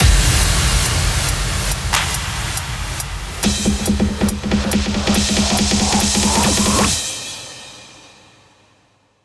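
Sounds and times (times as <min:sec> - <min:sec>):
hands up trance fills: 0:00.0 - 0:08.2.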